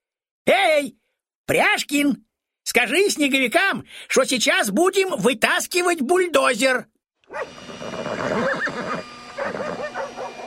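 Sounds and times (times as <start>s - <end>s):
speech: 0.5s - 8.8s
horse neighing: 7.4s - 10.4s.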